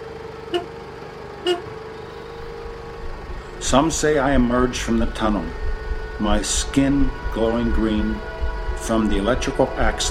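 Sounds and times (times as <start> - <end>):
steady low car engine idle: 0.0 - 10.0
short car horn taps at an abandoned salt tunnel in South Park: 0.5 - 0.8, 1.4 - 2.4
speech: 1.4 - 1.7, 3.7 - 5.6, 6.2 - 10.0.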